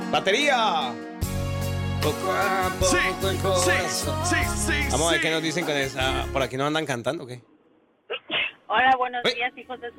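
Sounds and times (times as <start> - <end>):
speech: 0.1 - 1.3, 2.0 - 7.5, 8.7 - 9.9
person sneezing: 8.1 - 8.7.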